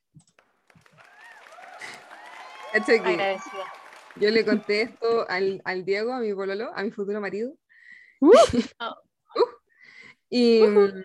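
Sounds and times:
crowd applause: 0.3s - 5.6s
speech: 2.7s - 7.6s, 8.2s - 9.5s, 10.3s - 11.0s
laughter: 4.2s - 5.1s.

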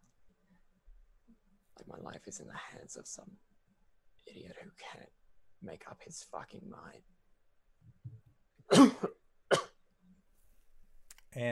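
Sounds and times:
speech: 1.8s - 3.5s, 4.3s - 7.2s, 11.4s - 11.5s
person coughing: 8.7s - 9.8s.

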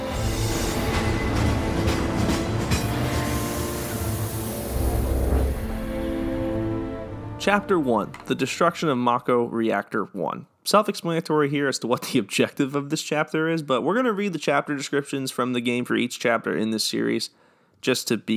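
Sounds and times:
video game train rumbling: 0.2s - 6.8s
speech: 7.5s - 18.3s.

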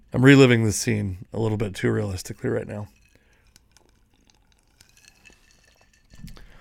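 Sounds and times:
speech: 0.1s - 3.0s
low fizzing of whiskey and ginger ale: 2.2s - 6.2s
spoon clinking against a glass of whiskey and ginger ale being stirred: 2.9s - 6.5s.

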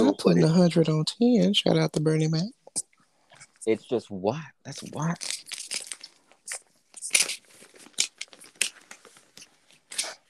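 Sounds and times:
speech: 0.2s - 2.9s, 3.6s - 5.4s
copy paper package wrapping being torn and crinkled open: 4.9s - 10.2s.

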